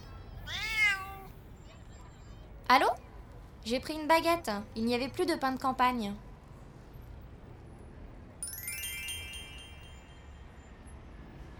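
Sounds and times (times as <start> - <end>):
neighbours' cat giving a drawn-out meow: 0.5 - 1.3
speech: 2.7 - 3.0, 3.6 - 6.2.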